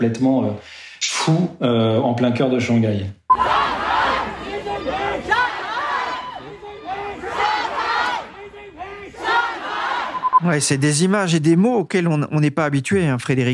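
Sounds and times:
speech: 0:00.0 - 0:03.5, 0:10.4 - 0:13.5
large outdoor protest crowd chanting anti-government slogans: 0:03.3 - 0:10.4.

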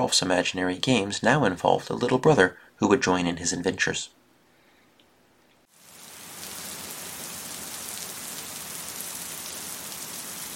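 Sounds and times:
speech: 0:00.0 - 0:04.2
rain pattering on a surface: 0:05.7 - 0:10.5.

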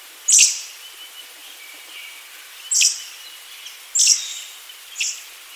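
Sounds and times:
Little Lorikeet shrill screeches: 0:00.3 - 0:00.7, 0:04.0 - 0:05.2.

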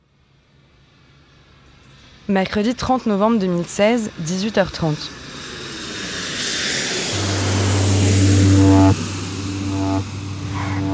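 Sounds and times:
speech: 0:02.3 - 0:05.2
airplane engines roaring while rolling on tarmac after landing: 0:03.9 - 0:10.9.

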